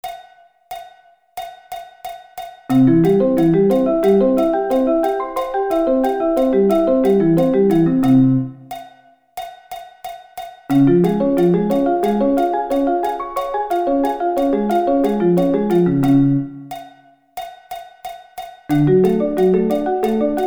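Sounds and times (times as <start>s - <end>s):
arpeggio inversions: 2.7s - 8.6s, 10.7s - 16.7s, 18.7s - 20.4s.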